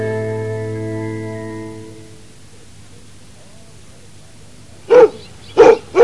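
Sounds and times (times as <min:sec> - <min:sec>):
dog barking: 0:04.2 - 0:06.0.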